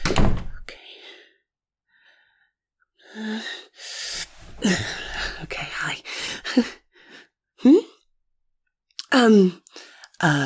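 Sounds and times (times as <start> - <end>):
door pushed shut with a solid thunk: 0.0 - 0.7
speech: 4.6 - 5.0, 6.6 - 6.8, 9.2 - 9.6, 10.2 - 10.4.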